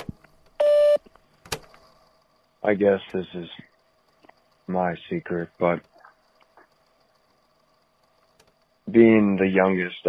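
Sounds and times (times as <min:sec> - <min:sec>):
faint clicks: 0:00.0 - 0:09.5
voicemail recording tone electronic beep: 0:00.6 - 0:01.0
speech: 0:02.6 - 0:03.7, 0:04.7 - 0:05.9, 0:08.9 - 0:10.0.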